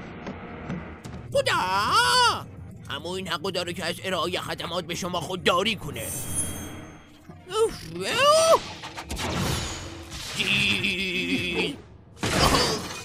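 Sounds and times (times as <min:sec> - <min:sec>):
speech: 0:01.4 - 0:06.4, 0:07.5 - 0:09.6, 0:10.4 - 0:12.6
glass shattering crash: 0:09.1 - 0:10.4, 0:12.2 - 0:13.0.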